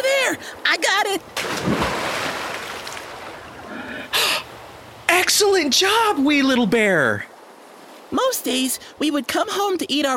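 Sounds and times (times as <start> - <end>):
flowing river water: 0.0 - 10.1
speech: 0.4 - 1.9, 5.3 - 7.3, 8.1 - 10.1
splashy burst of river water: 1.2 - 8.3.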